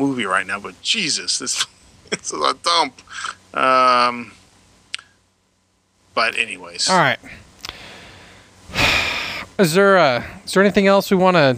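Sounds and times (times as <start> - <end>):
speech: 0.0 - 4.4, 6.2 - 7.4, 9.6 - 11.5
person sniffing loudly imitating a dog: 7.7 - 9.5.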